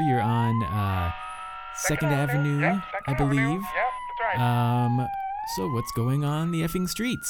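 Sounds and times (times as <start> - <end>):
emergency siren wailing: 0.0 - 7.2
speech: 0.0 - 7.2
two people talking over a phone-like line: 0.0 - 7.2.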